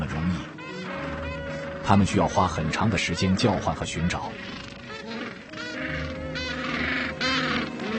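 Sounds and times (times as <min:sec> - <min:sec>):
chorus of penguins calling on a beach: 0:00.0 - 0:07.9
speech: 0:01.9 - 0:04.6.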